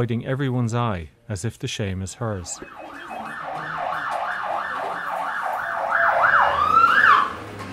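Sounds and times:
speech: 0.0 - 3.1
ambulance siren wailing: 2.6 - 7.6
low hum of traffic: 2.6 - 7.7.

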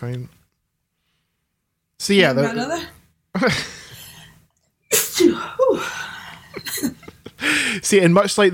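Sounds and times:
speech: 0.0 - 0.4, 2.0 - 3.8, 4.9 - 8.5
loud sneezes: 4.9 - 6.0.

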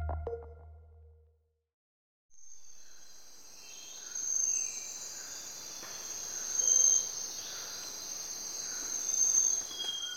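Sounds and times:
insects chirping in a tropical forest in Ecuador: 2.4 - 10.1.

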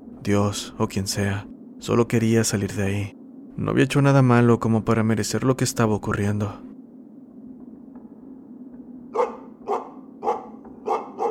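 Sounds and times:
faint steady low hum: 0.0 - 11.2
speech: 0.2 - 6.7
dog barking in the distance: 9.1 - 11.2.

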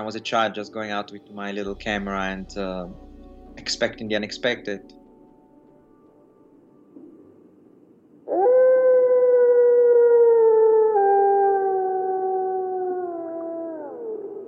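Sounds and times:
speech: 0.0 - 5.0
wolf howling: 8.3 - 14.4.

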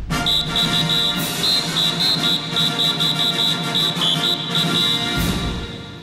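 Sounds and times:
referee whistle blast: 0.2 - 5.9.

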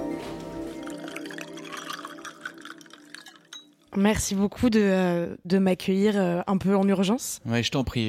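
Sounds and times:
water poured into a glass: 0.2 - 3.9
speech: 3.9 - 8.0.

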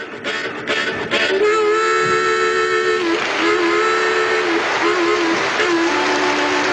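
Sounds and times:
bluesy harmonica imitating a passenger train: 0.0 - 6.7.

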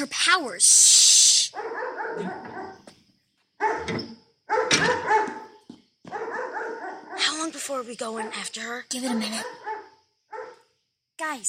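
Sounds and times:
speech: 0.0 - 1.1, 2.1 - 2.7, 7.7 - 9.8, 11.2 - 11.4
dog left home alone barking and yipping: 1.5 - 2.9, 3.6 - 7.4, 8.0 - 10.7.

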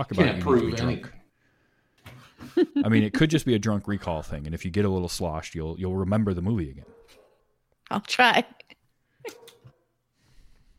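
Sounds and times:
speech: 0.0 - 1.2, 2.4 - 7.2, 7.9 - 9.4
laughter: 2.4 - 3.5
agitated dog barking upstairs: 6.8 - 7.4, 9.3 - 9.8.

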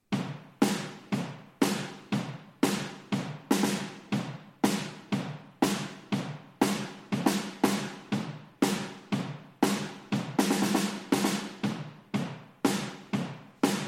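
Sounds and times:
triggered drum room microphones with added reverb: 0.0 - 13.8.

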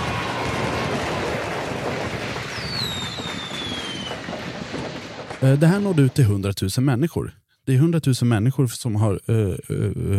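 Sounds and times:
rising firework whistle streaking upward: 0.0 - 5.4
fireworks crackling bursts: 0.0 - 6.5
speech: 5.4 - 10.1.

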